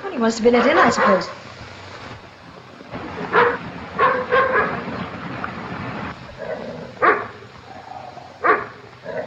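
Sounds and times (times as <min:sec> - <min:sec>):
speech: 0:00.2 - 0:01.6
dog barking: 0:00.6 - 0:01.4, 0:03.3 - 0:04.8, 0:07.0 - 0:07.4, 0:08.4 - 0:08.8.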